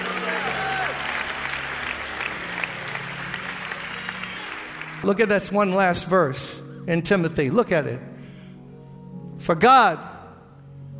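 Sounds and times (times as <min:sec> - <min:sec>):
crowd applauding: 0:00.0 - 0:05.6
speech: 0:05.0 - 0:08.1, 0:09.4 - 0:10.1.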